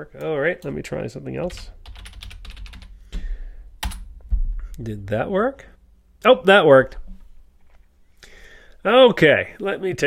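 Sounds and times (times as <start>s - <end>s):
speech: 0.0s - 2.1s, 4.8s - 7.0s, 8.8s - 10.0s
typing a password on a computer keyboard: 1.5s - 2.9s, 3.8s - 4.1s.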